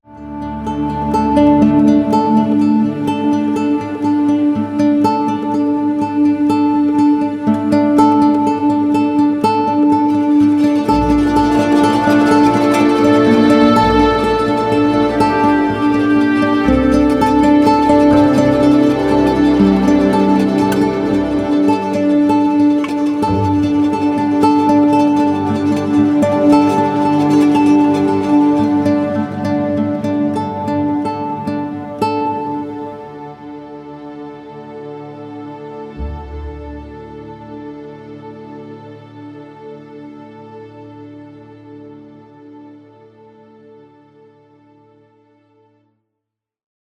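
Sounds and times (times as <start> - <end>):
arpeggiated ukulele: 0.3 - 33.0.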